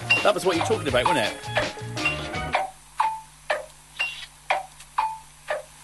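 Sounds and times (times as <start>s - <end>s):
clock ticking: 0.1s - 3.8s, 4.5s - 5.7s
speech: 0.2s - 1.6s.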